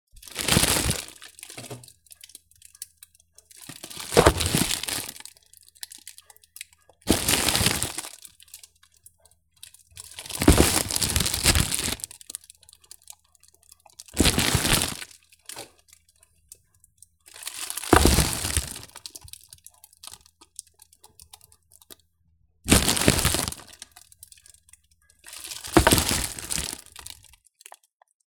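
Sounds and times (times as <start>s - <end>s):
plastic bag being kneaded, stretched and torn: 0.2s - 1.8s, 3.9s - 5.2s, 7.1s - 8.2s, 10.1s - 12.2s, 14.2s - 15.2s, 17.4s - 19.2s, 22.7s - 23.9s, 25.3s - 27.2s.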